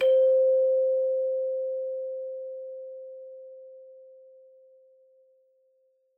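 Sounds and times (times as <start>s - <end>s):
sustained C4 hand chime struck: 0.0s - 1.2s.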